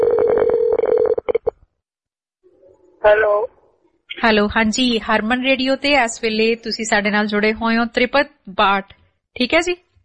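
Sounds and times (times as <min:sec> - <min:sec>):
telephone ringback tone on an outgoing call: 0:00.0 - 0:01.4
speech: 0:03.0 - 0:09.8.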